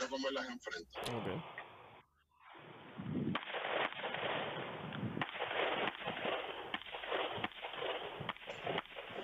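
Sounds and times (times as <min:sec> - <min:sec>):
steady noise: 0:00.0 - 0:09.2
speech: 0:00.1 - 0:01.6
rapid gunshots in a shooting drill at target cards: 0:03.2 - 0:09.2.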